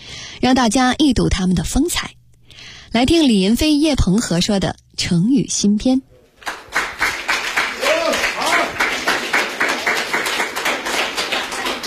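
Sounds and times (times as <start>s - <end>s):
speech: 0.4s - 2.2s, 2.9s - 6.1s
audience applause in a small theater as crosstalk comedians come on stage: 6.4s - 11.8s.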